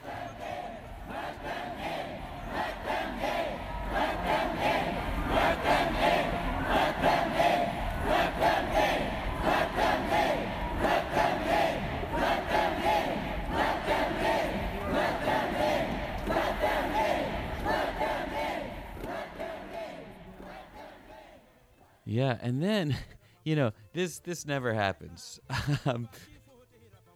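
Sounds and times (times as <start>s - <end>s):
large crowd chanting outside a courthouse: 0.0s - 23.0s
laughter: 22.1s - 26.6s
speech: 22.4s - 26.3s.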